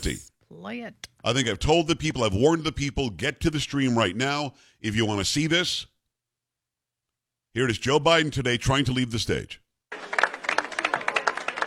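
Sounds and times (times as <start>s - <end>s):
speech: 0.0s - 5.9s, 7.6s - 10.2s
audience clapping: 9.9s - 11.6s.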